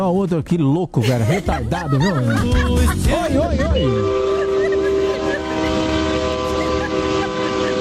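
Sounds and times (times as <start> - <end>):
speech: 0.2 - 4.3
laughter: 1.0 - 7.7
truck air horn blast: 3.8 - 7.7.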